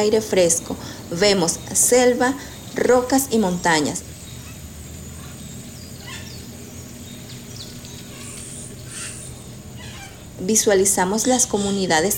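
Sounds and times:
speech: 0.0s - 4.2s, 10.4s - 12.1s
dense steady forest ambience: 0.0s - 12.1s
various Amazon birds calling and chirping: 0.0s - 12.1s.

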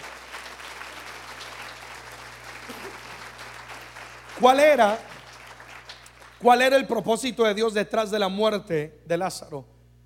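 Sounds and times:
church audience applauding loudly during a sermon: 0.0s - 6.6s
low constant hum: 0.0s - 10.0s
speech: 4.4s - 5.1s, 6.4s - 9.7s.

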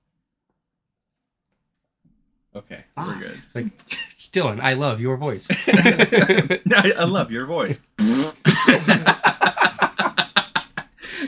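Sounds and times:
speech: 2.6s - 9.6s
laughter: 3.0s - 11.2s
fart sound effect played by a smart speaker: 8.0s - 8.6s.

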